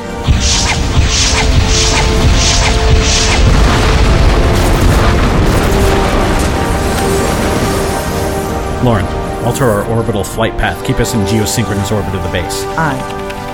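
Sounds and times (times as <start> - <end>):
continuous booming rumble of explosions: 0.0 - 10.4
starship firing missiles at planetary defense batteries: 0.2 - 10.2
speech: 8.8 - 13.3.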